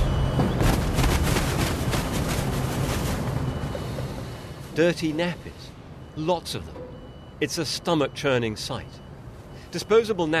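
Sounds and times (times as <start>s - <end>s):
wind noise: 0.0s - 4.2s
heavy truck engine rumbling at a recycling center in Treviso: 0.0s - 7.5s
speech: 4.8s - 9.0s, 9.7s - 10.3s.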